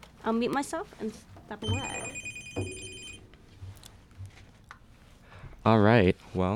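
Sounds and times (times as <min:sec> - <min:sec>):
speech: 0:00.2 - 0:02.8, 0:05.6 - 0:06.5
telephone ringing with a bright electronic trill: 0:01.6 - 0:03.3.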